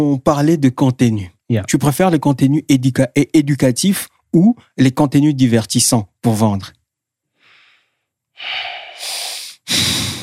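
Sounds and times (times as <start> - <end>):
speech: 0.0 - 6.8, 8.4 - 9.1
person breathing deeply through the nose and mouth: 7.3 - 10.2.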